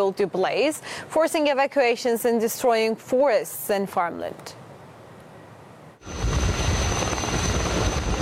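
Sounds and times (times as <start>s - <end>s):
speech: 0.0s - 4.6s
firefighting helicopter loaded with water battling a wildfire northwest of Athens Greece: 6.0s - 8.2s.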